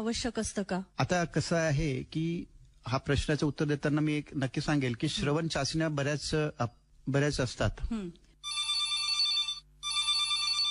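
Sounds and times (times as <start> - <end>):
speech: 0.0 - 8.2
telephone ringing with an incoming call: 8.4 - 10.7.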